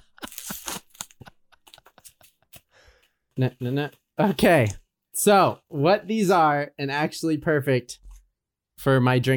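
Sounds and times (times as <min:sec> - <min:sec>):
crinkly packaging around ceramic shot glasses torn open by hand: 0:00.0 - 0:02.7
speech: 0:03.4 - 0:08.0, 0:08.8 - 0:09.3.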